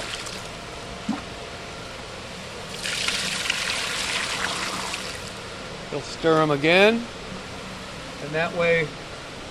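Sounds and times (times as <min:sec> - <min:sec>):
water poured into egg bucket: 0:02.8 - 0:05.2
speech: 0:05.9 - 0:07.2, 0:08.3 - 0:09.0.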